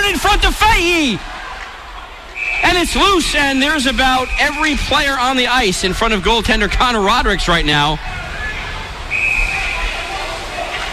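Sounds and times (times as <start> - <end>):
roar of an arena crowd: 0.0 - 10.9
speech: 0.2 - 1.4, 2.7 - 8.2
referee's whistle blast stopping play at a hockey game: 2.4 - 4.7, 9.1 - 10.0.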